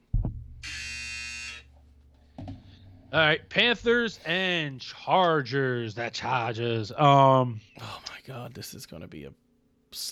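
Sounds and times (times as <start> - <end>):
short thump: 0.0 - 0.6, 2.3 - 2.8
loud harsh electronic buzzer: 0.6 - 1.8
speech: 3.1 - 10.1.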